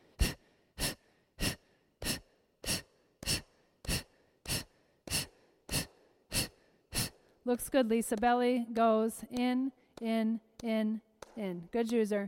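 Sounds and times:
forceful exhalations during a seated breathing exercise: 0:00.0 - 0:07.4
speech: 0:07.5 - 0:12.2.

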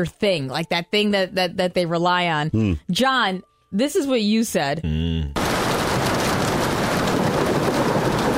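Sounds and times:
speech: 0:00.0 - 0:05.4
distant thunder rumble: 0:05.4 - 0:08.3
steady dense rainfall: 0:05.4 - 0:08.3.

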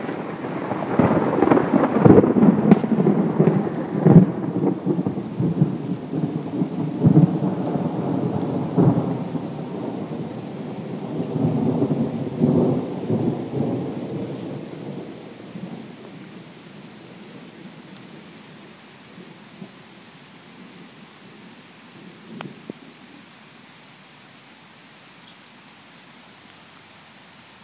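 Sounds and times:
thunder rumbling and cracking: 0:00.0 - 0:16.2
steady rain pouring: 0:00.0 - 0:27.6.

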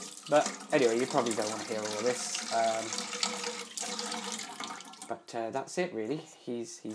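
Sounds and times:
tap water running into a sink while a pet's bowl is washed: 0:00.0 - 0:05.1
speech: 0:00.3 - 0:04.0, 0:05.1 - 0:06.9.

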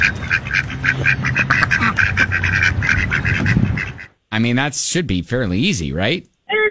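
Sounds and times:
low honks: 0:00.0 - 0:04.0
ducks quacking a mating call: 0:00.0 - 0:04.2
speech: 0:01.0 - 0:01.6, 0:04.4 - 0:06.3.

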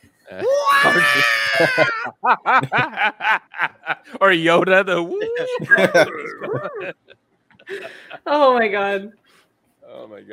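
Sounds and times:
speech: 0:00.3 - 0:09.2, 0:09.9 - 0:10.3
voice imitating a shrill warbling robot droid scream: 0:00.4 - 0:02.1, 0:05.5 - 0:06.9
rhythmic bursts of laughter: 0:00.4 - 0:04.2, 0:05.1 - 0:08.3.

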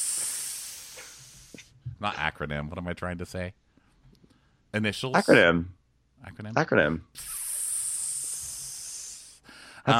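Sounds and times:
voice hissing: 0:00.0 - 0:01.6, 0:07.2 - 0:09.5
speech: 0:02.0 - 0:03.6, 0:04.7 - 0:07.4.

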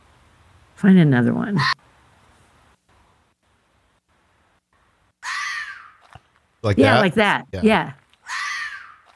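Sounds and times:
speech: 0:00.8 - 0:01.8, 0:06.7 - 0:08.0
fox screaming: 0:05.2 - 0:06.2, 0:08.2 - 0:09.1.

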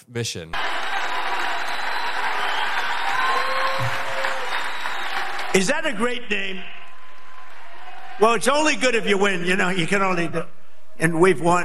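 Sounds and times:
speech: 0:00.0 - 0:01.0, 0:05.5 - 0:06.8, 0:08.2 - 0:11.6
large rally crowd clapping and cheering: 0:00.5 - 0:10.1
people shouting in a crowd: 0:00.6 - 0:04.6.

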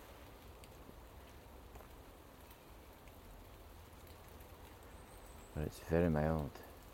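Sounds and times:
gentle rain patter of drops on surfaces on a mild September day: 0:00.0 - 0:06.9
speech: 0:05.6 - 0:06.7.

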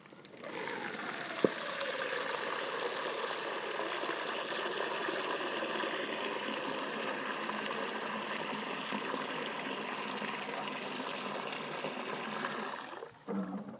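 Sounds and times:
water gushing into a dog's water bowl, a former mixing bowl: 0:00.0 - 0:13.7.

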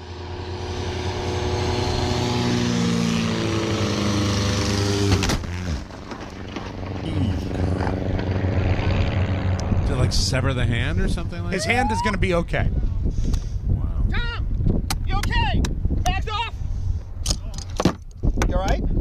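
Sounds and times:
propeller aircraft engines droning: 0:00.0 - 0:18.9
speech: 0:10.1 - 0:12.8.

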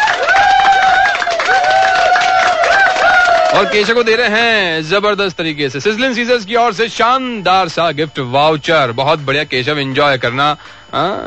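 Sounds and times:
whoops: 0:00.0 - 0:03.9
applause of many hands clapping: 0:00.0 - 0:04.2
crowd cheering: 0:00.0 - 0:04.5
speech: 0:03.6 - 0:11.2.

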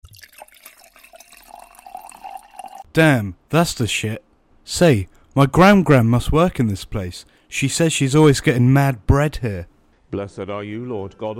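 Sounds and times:
drink being poured: 0:00.0 - 0:02.9
liquid trickling and splashing: 0:00.0 - 0:02.9
speech: 0:03.0 - 0:11.3.

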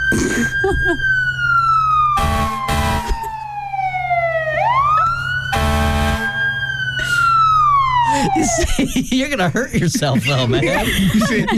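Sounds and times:
speech: 0:00.1 - 0:01.1, 0:08.8 - 0:11.5
voice imitating a fire truck siren from the back of the throat: 0:00.1 - 0:01.2, 0:02.1 - 0:08.7
laughter: 0:00.3 - 0:01.1, 0:08.0 - 0:11.5.

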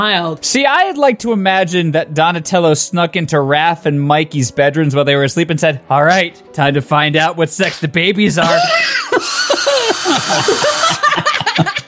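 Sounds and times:
speech: 0:00.0 - 0:09.3, 0:10.1 - 0:11.7
people laughing: 0:08.4 - 0:11.8
power drill whirring: 0:09.1 - 0:11.2.

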